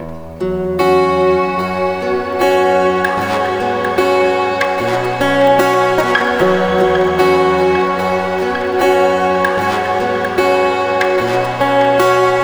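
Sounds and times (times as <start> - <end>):
guitar loop in B major: 0.0 - 12.4.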